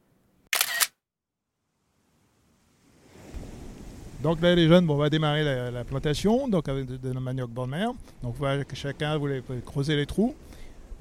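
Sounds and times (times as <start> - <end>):
camera shutter snapping as a photo is taken: 0.5 - 0.9
soft rushing wind-like noise: 2.0 - 10.9
speech: 4.2 - 10.9.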